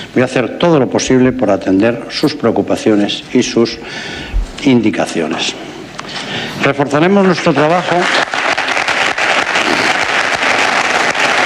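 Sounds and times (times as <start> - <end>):
speech: 0.2 - 5.7, 6.3 - 8.4
large audience applauding at an election closing event: 7.3 - 11.4.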